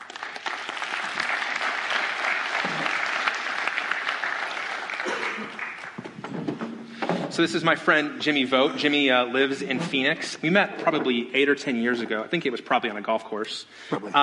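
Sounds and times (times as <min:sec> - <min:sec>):
audience applause welcoming a man brought up to the front: 0:00.0 - 0:06.2
speech: 0:07.4 - 0:14.2.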